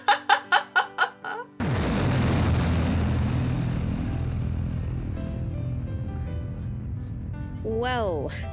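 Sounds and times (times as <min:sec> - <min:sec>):
short laughter-like bursts: 0:00.0 - 0:01.5
spaceship exploding with a heavy boom: 0:01.6 - 0:07.7
speech: 0:07.8 - 0:08.5.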